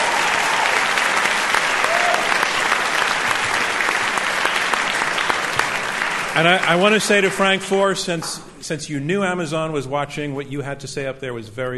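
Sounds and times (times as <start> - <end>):
audience applauding: 0.0 - 8.0
speech: 6.4 - 11.7.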